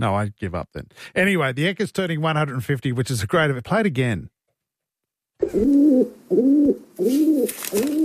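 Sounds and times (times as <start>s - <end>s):
speech: 0.0s - 4.4s, 5.4s - 8.0s
pigeon cooing in low throaty rolling phrases: 5.4s - 8.0s.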